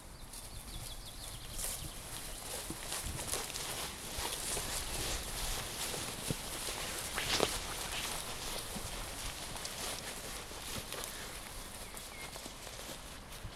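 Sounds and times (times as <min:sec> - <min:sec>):
walkers in the grass: 0:00.0 - 0:13.5.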